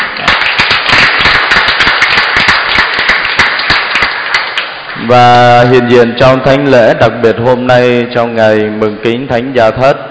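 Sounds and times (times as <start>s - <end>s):
large crowd applauding loudly: 0.0s - 5.1s
speech: 5.1s - 10.0s.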